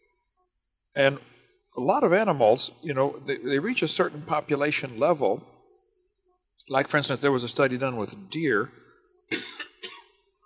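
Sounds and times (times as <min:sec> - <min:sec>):
speech: 0:01.0 - 0:05.5, 0:06.7 - 0:09.5
person coughing harshly: 0:09.3 - 0:10.1.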